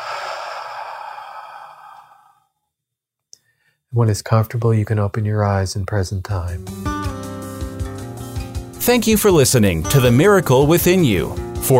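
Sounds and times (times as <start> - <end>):
slow deep exhale during a guided breathing exercise: 0.0 - 2.5
speech: 3.9 - 7.0, 8.8 - 11.7.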